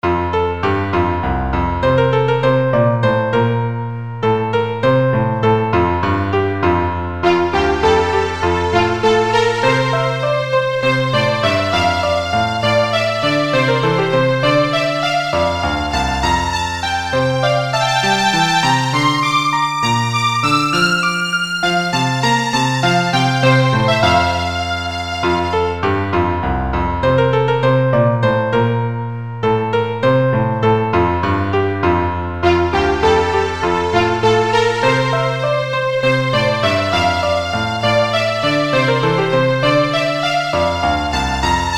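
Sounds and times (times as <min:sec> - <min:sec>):
piano playing: 0:00.0 - 0:41.7
violin playing: 0:07.2 - 0:26.3, 0:32.4 - 0:41.7.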